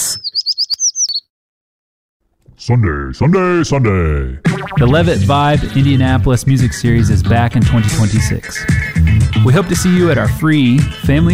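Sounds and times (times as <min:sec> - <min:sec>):
American tree sparrow song: 0:00.0 - 0:01.3
speech: 0:02.6 - 0:11.3.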